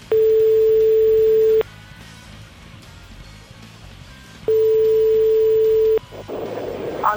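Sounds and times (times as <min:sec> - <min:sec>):
telephone ringback tone with long buzzing tones: 0:00.1 - 0:01.6, 0:04.5 - 0:06.0.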